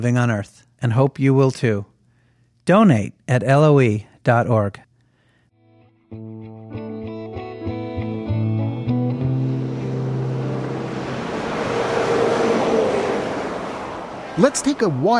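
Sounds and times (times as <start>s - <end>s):
speech: 0.0s - 1.9s, 2.7s - 4.9s, 6.1s - 6.5s, 14.4s - 15.1s
sustained tonal notes: 8.6s - 13.7s
highway traffic zipping past: 8.8s - 15.1s.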